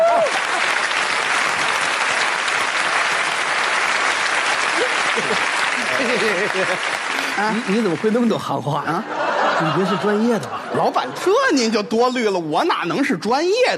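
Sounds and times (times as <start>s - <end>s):
large audience applauding to invite a company boss up to speak: 0.0s - 9.7s
laughter: 4.7s - 8.0s, 8.8s - 11.9s
speech: 6.2s - 13.7s.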